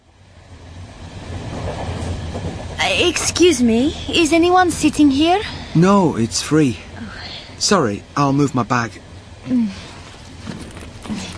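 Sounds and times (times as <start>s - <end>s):
moving passenger train rumbling heard from inside a carriage: 0.0s - 11.3s
speech: 2.9s - 6.9s, 7.6s - 9.9s.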